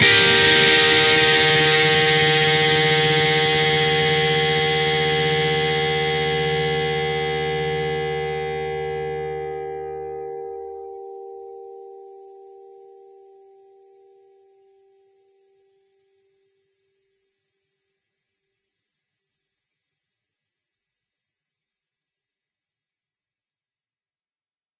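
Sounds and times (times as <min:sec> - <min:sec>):
G minor chord in the second octave with an added high note: 0:00.0 - 0:15.3.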